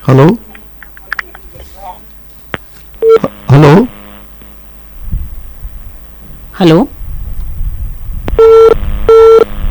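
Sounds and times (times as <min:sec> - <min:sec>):
speech: 0:00.0 - 0:00.4, 0:06.6 - 0:07.0
telephone tone beeps after a dropped phone-in call: 0:03.0 - 0:03.3, 0:08.4 - 0:09.5.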